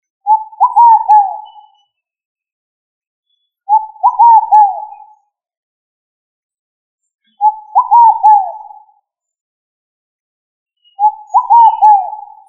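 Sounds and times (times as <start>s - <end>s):
pigeon of family Columbidae cooing in wavering phrases: 0.3s - 1.4s, 3.7s - 4.9s, 7.4s - 8.7s, 11.0s - 12.4s.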